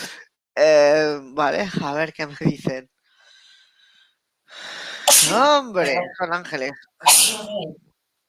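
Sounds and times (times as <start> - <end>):
speech: 0.6 - 3.0, 4.5 - 7.9
person sneezing: 5.0 - 5.5, 7.0 - 7.7.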